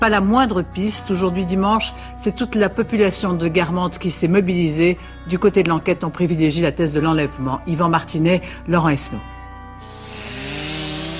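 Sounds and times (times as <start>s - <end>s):
speech: 0.0s - 9.4s
chainsaw cutting through thick ice: 9.9s - 11.1s.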